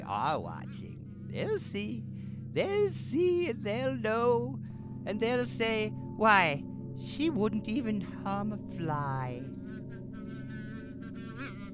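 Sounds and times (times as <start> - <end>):
bee buzzing: 0.0 - 4.0, 9.0 - 11.7
speech: 0.1 - 9.9.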